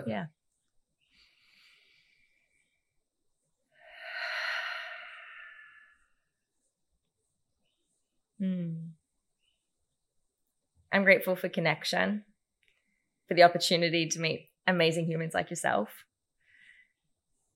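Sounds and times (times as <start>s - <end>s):
speech: 0.0s - 0.4s, 8.4s - 9.0s, 10.9s - 12.3s, 13.3s - 16.1s
slow deep breaths in a calming exercise: 1.0s - 3.1s, 3.7s - 6.3s, 16.4s - 17.2s.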